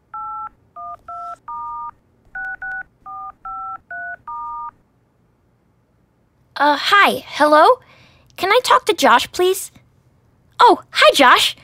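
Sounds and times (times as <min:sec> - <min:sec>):
telephone keypad dual-pitched dial tones: 0:00.1 - 0:04.8
speech: 0:06.6 - 0:07.8, 0:08.4 - 0:09.8, 0:10.6 - 0:11.6.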